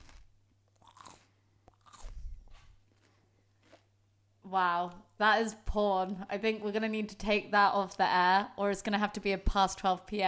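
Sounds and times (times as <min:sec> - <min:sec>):
celery bitten and chewed on the microphone: 0:00.0 - 0:03.9
speech: 0:04.5 - 0:10.2.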